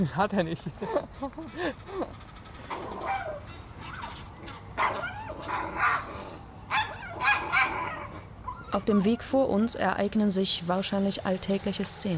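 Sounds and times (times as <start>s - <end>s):
speech: 0.0s - 3.6s, 8.7s - 12.1s
dog barking outdoors on a walking path: 3.0s - 3.4s, 4.8s - 6.1s, 6.7s - 8.2s.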